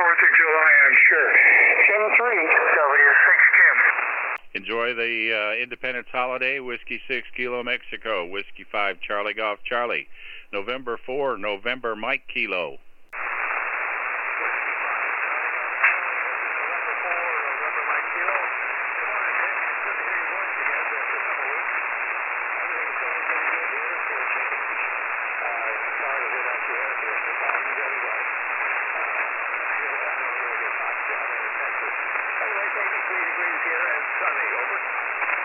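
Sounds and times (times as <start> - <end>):
faint barely readable voice on a weak ham radio signal: 0.0 - 4.0, 14.3 - 21.8, 22.4 - 35.4
steady narrow-band static hiss of a weak ham radio signal: 0.0 - 35.4
speech: 0.2 - 3.0, 4.6 - 12.9.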